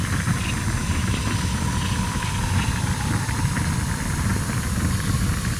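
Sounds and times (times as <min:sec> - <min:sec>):
mortar shell trail whistling: 0:00.2 - 0:05.4.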